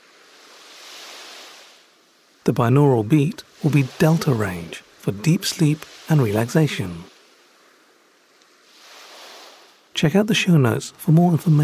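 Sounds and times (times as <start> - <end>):
ocean waves: 0.0 - 11.6
speech: 2.4 - 7.1, 10.0 - 11.6.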